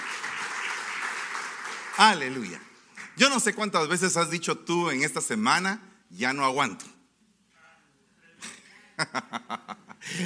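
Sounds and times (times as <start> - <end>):
audience applauding: 0.0 - 3.6
speech: 2.0 - 6.9
laughter: 8.4 - 10.2.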